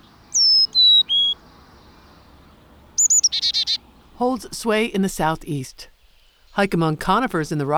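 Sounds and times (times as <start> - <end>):
Carolina chickadee whistling clear notes and buzzy dee notes: 0.0 - 4.2
speech: 4.2 - 5.9, 6.6 - 7.7.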